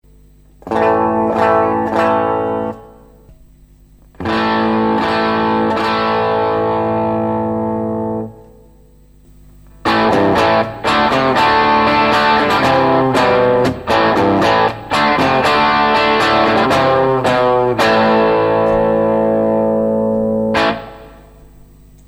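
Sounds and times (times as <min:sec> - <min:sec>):
Tech21 Flyrig V2 plexi amp simulator pedal tone: 0:00.0 - 0:22.0.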